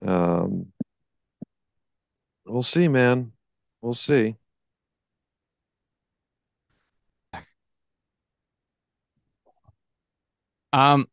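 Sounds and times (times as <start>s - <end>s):
speech: 2.6s - 4.4s, 10.8s - 11.1s
sharp throat-clearing cough: 7.4s - 7.6s.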